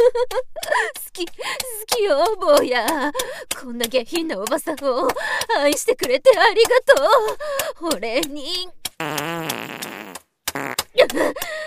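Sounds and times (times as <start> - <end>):
speech: 0.1 - 10.0, 10.6 - 11.6
loud drawn-out buzzy rattling fart: 9.0 - 11.1.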